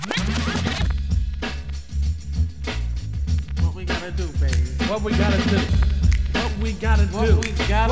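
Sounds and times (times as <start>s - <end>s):
DJ record rewind scratch: 0.0s - 1.8s, 2.8s - 6.8s
heavy thumping bass beat with punchy kicks: 0.1s - 7.9s
speech: 4.2s - 5.9s, 6.6s - 7.9s.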